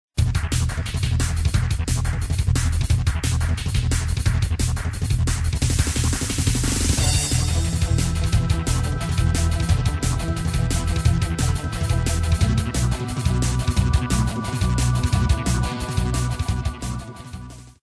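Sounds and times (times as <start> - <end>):
pop dance music: 0.3 - 17.4.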